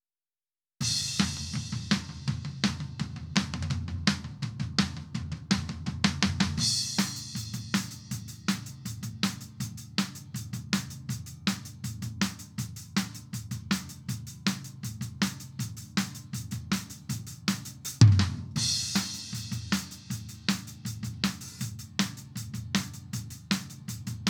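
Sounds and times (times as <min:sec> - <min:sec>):
rack tom drum: 0:00.8 - 0:24.2.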